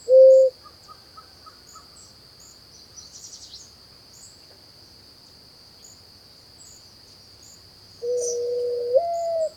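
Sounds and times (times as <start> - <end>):
mourning dove coo: 0.0 - 0.5, 8.0 - 9.5.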